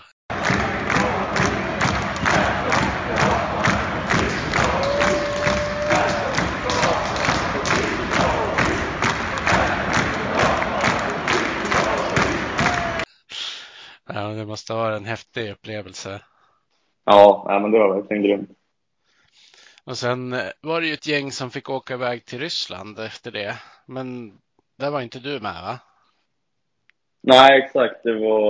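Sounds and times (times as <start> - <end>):
team chanting in unison: 0.3 - 13.1
speech: 14.6 - 16.3, 17.0 - 18.6, 19.9 - 25.9, 27.2 - 28.4.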